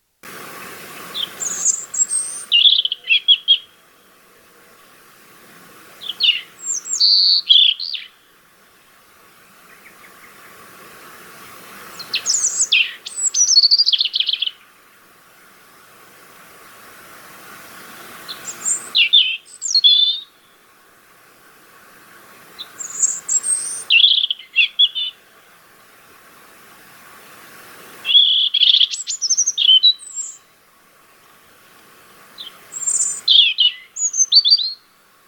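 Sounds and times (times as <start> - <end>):
European robin singing: 0.4 - 3.8, 6.0 - 8.3, 11.9 - 14.8, 17.8 - 20.6, 22.6 - 25.3, 28.0 - 30.5, 32.4 - 35.0.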